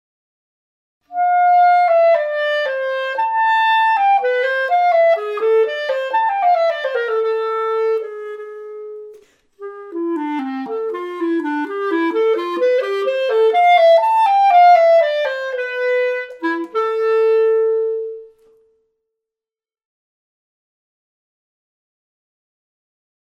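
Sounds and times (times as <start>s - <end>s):
clarinet: 1.0s - 19.0s.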